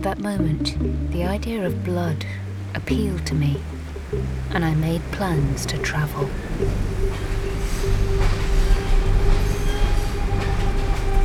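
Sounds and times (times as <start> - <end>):
speech: 0.0 - 7.4
train rumbling along the rails: 1.7 - 11.2
train wheels clicking over track joints: 4.0 - 11.2
faint metallic squeals of a train: 5.7 - 11.2.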